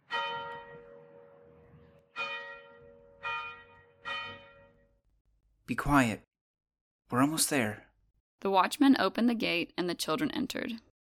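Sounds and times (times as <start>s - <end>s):
large bell tolling in a bell tower in a town square: 0.0s - 5.0s
speech: 5.7s - 6.3s, 7.1s - 10.9s.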